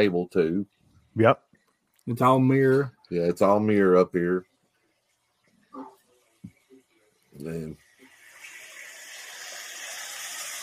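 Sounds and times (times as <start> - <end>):
speech: 0.0 - 1.5, 2.1 - 4.5, 7.4 - 7.8
water running into a cave tub: 8.0 - 10.6.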